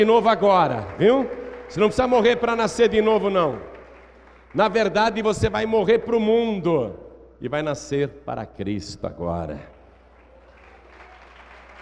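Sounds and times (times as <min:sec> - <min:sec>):
speech: 0:00.0 - 0:03.7, 0:04.5 - 0:09.7
audience applauding: 0:00.0 - 0:05.0, 0:09.9 - 0:11.8.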